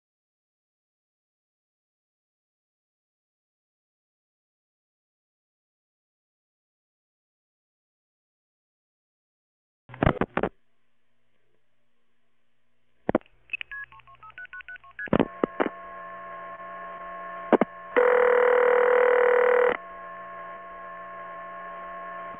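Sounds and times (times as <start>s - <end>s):
faint mains hum: 9.9s - 22.3s
telephone clicks: 13.0s - 15.8s, 17.5s - 17.7s
telephone keypad DTMF tones dialing a conference number: 13.5s - 15.7s, 18.0s - 19.8s
long steady telephone buzzing tone: 15.1s - 22.3s.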